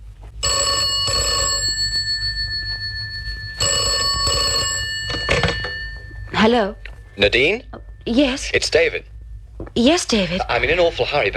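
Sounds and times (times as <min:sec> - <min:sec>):
low hum: 0:00.0 - 0:11.3
telephone ringing with a bright electronic tone: 0:00.4 - 0:08.8
speech: 0:06.4 - 0:09.1, 0:09.8 - 0:11.3.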